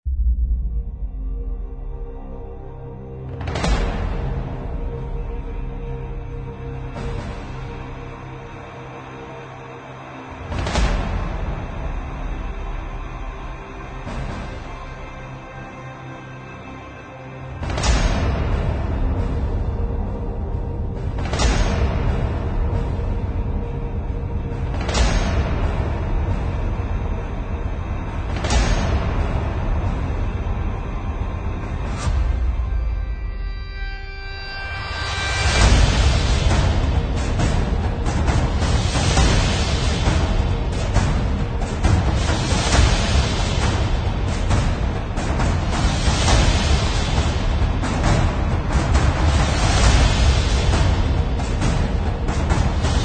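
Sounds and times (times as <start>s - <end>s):
epic trailer percussion: 0.0s - 53.0s.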